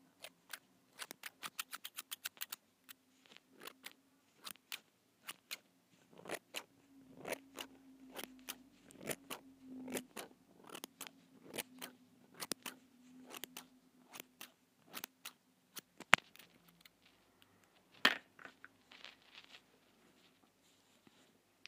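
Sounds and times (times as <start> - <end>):
faint low hum: 0.0 - 21.6
small scissors snipping: 0.2 - 5.6, 6.2 - 17.0.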